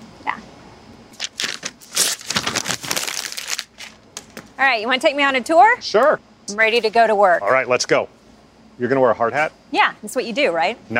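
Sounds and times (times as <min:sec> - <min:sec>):
paper being crumpled: 0:01.2 - 0:04.0
speech: 0:04.6 - 0:08.2, 0:08.8 - 0:10.9.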